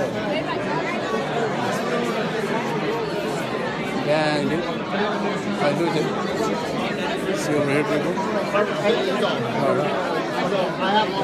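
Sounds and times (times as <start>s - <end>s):
crowd chatter: 0.0s - 11.2s
speech: 4.1s - 11.2s.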